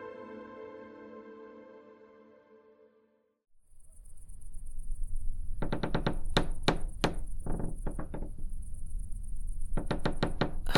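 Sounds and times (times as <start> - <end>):
night insects chirping: 3.6 - 10.7
old house creaking: 5.5 - 8.8, 9.4 - 10.7.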